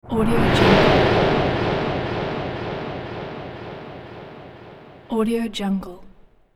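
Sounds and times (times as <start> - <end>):
vortex time pull whoosh: 0.0 - 5.7.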